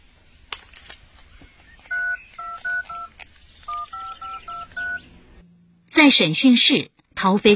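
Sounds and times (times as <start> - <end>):
phone keypad dual-tone dialing beeps: 1.7 - 5.0
speech: 6.0 - 7.5.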